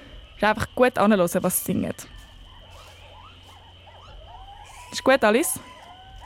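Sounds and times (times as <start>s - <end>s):
dense jungle hum of insects: 0.0s - 6.2s
speech: 0.4s - 2.2s, 5.0s - 5.7s
warbling whooping monkey calls: 2.0s - 6.2s.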